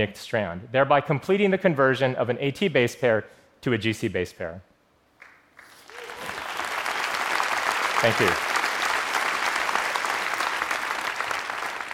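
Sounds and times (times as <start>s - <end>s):
speech: 0.0s - 4.7s, 8.0s - 8.5s
audience applause of many hands clapping: 5.6s - 11.9s.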